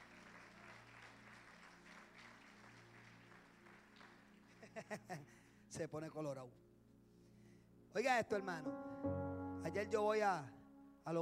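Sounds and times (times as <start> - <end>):
audience applause: 0.0 - 4.7
speech: 4.8 - 6.6, 7.9 - 11.2.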